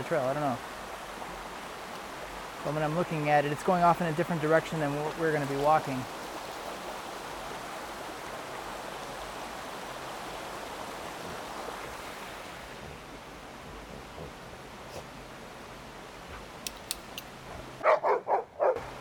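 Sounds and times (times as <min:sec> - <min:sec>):
speech: 0:00.0 - 0:00.8, 0:02.6 - 0:06.2
river flowing: 0:00.0 - 0:18.9
dog barking: 0:17.8 - 0:18.9.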